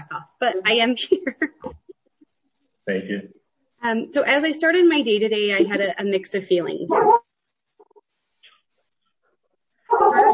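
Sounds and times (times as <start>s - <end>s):
speech: 0.4s - 1.5s, 2.9s - 7.2s
dog whining yelp: 6.9s - 7.2s, 9.9s - 10.3s.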